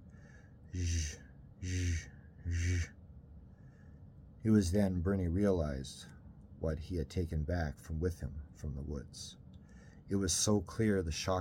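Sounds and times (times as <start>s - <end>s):
speech: 0.7s - 2.1s, 4.4s - 9.4s, 10.1s - 11.4s
person imitating loud raspy heavy breathing: 0.8s - 2.9s.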